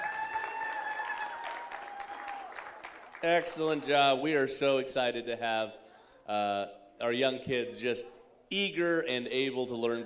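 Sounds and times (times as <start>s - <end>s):
audience applause for kids: 0.0s - 3.8s
speech: 3.2s - 10.0s.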